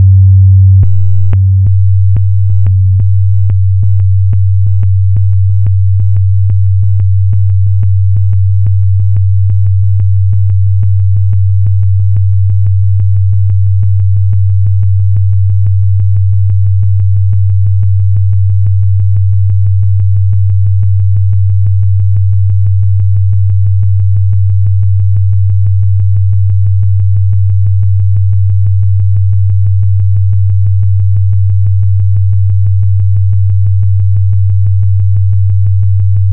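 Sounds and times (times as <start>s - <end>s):
simple sine wave tone: 0.0s - 36.3s.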